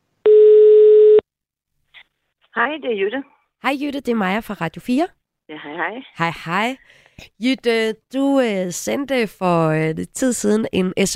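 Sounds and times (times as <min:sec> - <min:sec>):
telephone tone while a call is placed: 0:00.3 - 0:01.2
speech: 0:02.6 - 0:11.1.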